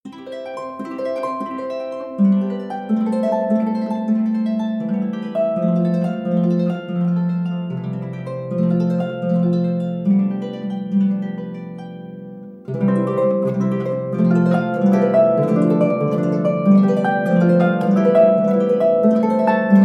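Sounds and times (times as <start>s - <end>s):
ebony harp arpeggio: 0.1s - 19.8s.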